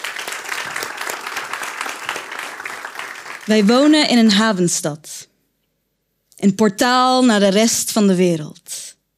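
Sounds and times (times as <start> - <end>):
audience applause of many hands clapping: 0.0 - 3.7
speech: 3.5 - 5.3, 6.4 - 8.6.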